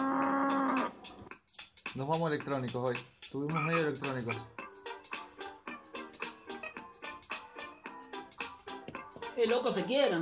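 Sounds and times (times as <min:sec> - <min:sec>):
cow moo sound effect: 0:00.0 - 0:01.0
speech: 0:02.0 - 0:04.6, 0:09.4 - 0:10.2.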